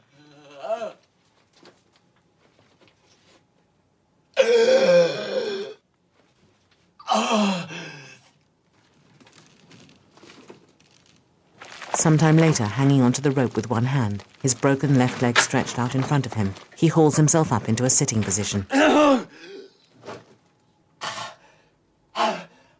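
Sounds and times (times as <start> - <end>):
man groaning in pain: 4.4 - 5.8, 7.0 - 8.2, 18.7 - 19.7
man gasping: 7.1 - 8.3
speech: 12.0 - 19.2.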